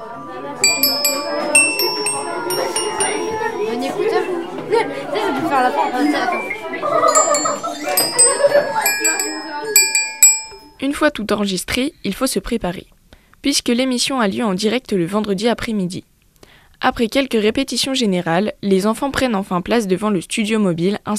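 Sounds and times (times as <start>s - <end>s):
bright metallic chimes rung by schoolchildren: 0.0s - 4.4s, 6.3s - 10.8s
children chattering: 0.0s - 10.7s
speech: 11.0s - 16.1s, 16.8s - 21.1s.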